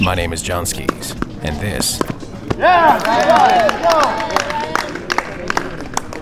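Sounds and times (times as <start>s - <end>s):
speech: 0.0s - 4.5s
tennis match crowd voices and shouts: 1.3s - 6.2s
scattered claps at a tennis match: 2.6s - 6.2s.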